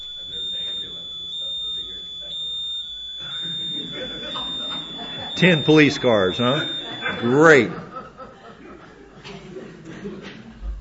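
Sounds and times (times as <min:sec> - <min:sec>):
alarm high electronic tone after a power cut: 0:00.0 - 0:07.8
laughter: 0:00.3 - 0:10.6
speech: 0:05.4 - 0:07.8.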